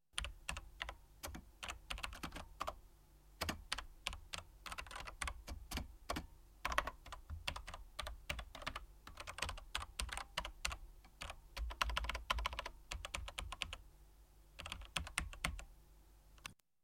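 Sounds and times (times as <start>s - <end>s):
computer keyboard: 0.2s - 2.8s, 3.4s - 13.8s, 14.6s - 15.7s.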